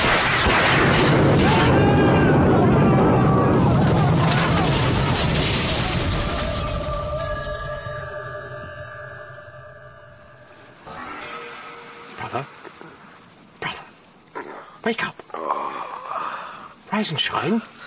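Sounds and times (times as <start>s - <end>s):
boat carrying a large copper ball exploding: 0.0s - 7.1s
lightning striking a boat in a thunderstorm: 0.0s - 7.4s
sustained ringing tones: 5.8s - 13.6s
speech: 17.0s - 17.7s.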